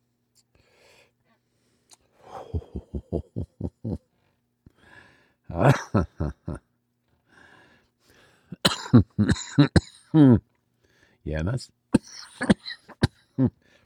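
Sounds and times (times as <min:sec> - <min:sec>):
speech: 0:05.6 - 0:06.4, 0:10.2 - 0:10.5, 0:11.3 - 0:11.8
person coughing after inhaling concentrate: 0:08.6 - 0:10.4, 0:12.0 - 0:13.5.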